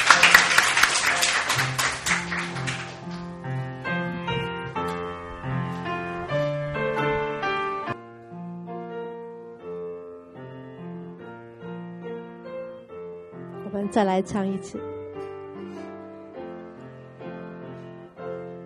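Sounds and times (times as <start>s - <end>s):
audience applause: 0.0s - 3.5s
soft sustained keyboard chords: 2.3s - 18.6s
speech: 13.8s - 14.9s.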